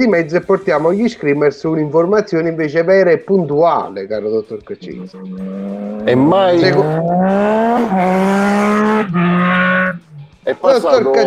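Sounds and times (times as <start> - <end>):
speech: 0.0 - 11.2
motorcycle engine roaring: 4.9 - 10.6.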